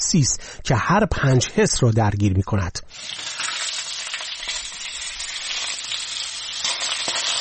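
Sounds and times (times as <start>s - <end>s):
speech: 0.1s - 3.3s
food sizzling in a hot pan: 2.9s - 7.4s.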